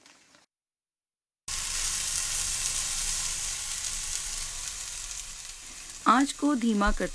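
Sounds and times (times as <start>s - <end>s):
chicken frying in a non-stick frying pan: 1.5s - 7.1s
speech: 6.1s - 7.1s.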